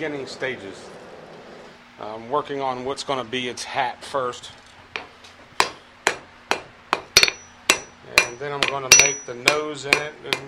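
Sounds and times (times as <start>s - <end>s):
speech: 0.0s - 1.0s, 2.0s - 4.6s, 8.4s - 10.4s
blacksmith hammer striking anvil: 5.6s - 10.4s
faint ringing tone of the anvil: 7.2s - 9.8s.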